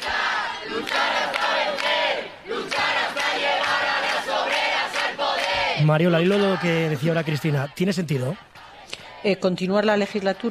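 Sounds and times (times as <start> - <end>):
large crowd shouting and chanting in the streets of Madrid: 0.0 - 10.5
speech: 5.8 - 8.6, 9.2 - 10.5.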